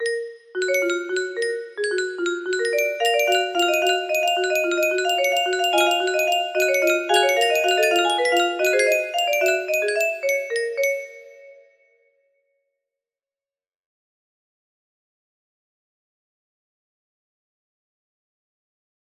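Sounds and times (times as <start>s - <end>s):
music box melody: 0.0s - 11.7s
alert tone: 2.8s - 10.2s.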